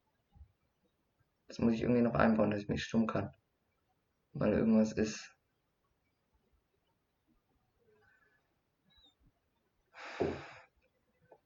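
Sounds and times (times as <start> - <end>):
speech: 1.5 - 3.4, 4.4 - 5.4
heavy noisy breath blown into the microphone: 10.0 - 10.7.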